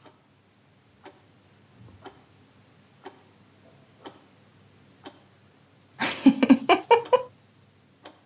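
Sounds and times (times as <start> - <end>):
clock ticking in a German registry office: 0.0 - 0.2, 1.0 - 1.3, 2.0 - 2.3, 3.0 - 3.3, 4.0 - 4.4, 5.0 - 5.4, 6.9 - 7.3, 8.0 - 8.2
laughter: 6.0 - 7.3.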